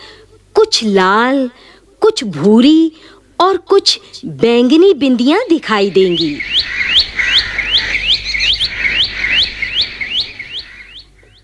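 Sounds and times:
speech: 0.7 - 6.8
bulbul singing bright repeated rising chirps: 5.6 - 11.4.

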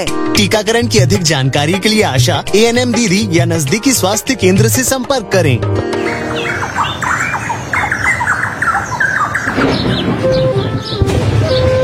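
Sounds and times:
speech: 0.0 - 6.2
birds squawking and squealing as they fly: 5.9 - 11.7.

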